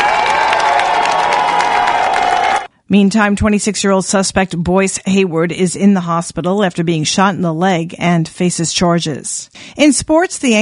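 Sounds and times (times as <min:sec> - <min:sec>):
police colleagues applauding: 0:00.0 - 0:02.7
police colleagues cheering: 0:00.0 - 0:02.7
speech: 0:02.9 - 0:10.6.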